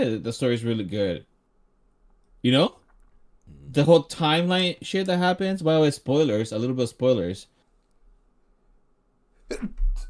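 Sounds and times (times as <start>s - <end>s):
speech: 0.0s - 1.3s, 2.4s - 2.8s, 3.7s - 7.5s, 9.5s - 10.0s
person sneezing: 9.4s - 10.0s.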